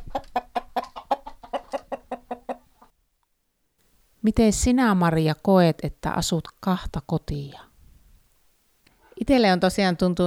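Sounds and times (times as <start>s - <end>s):
chicken clucking: 0.0s - 2.9s
speech: 4.2s - 7.7s, 9.2s - 10.2s.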